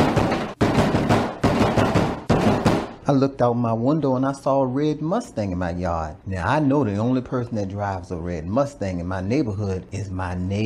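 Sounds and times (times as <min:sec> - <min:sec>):
loud hard banging on a door at night: 0:00.0 - 0:03.0
speech: 0:03.1 - 0:10.6.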